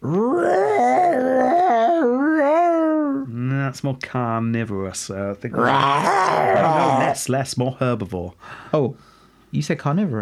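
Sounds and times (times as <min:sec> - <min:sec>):
large animal screaming in a swamp: 0:00.0 - 0:03.0, 0:05.5 - 0:07.2
speech: 0:03.7 - 0:10.2.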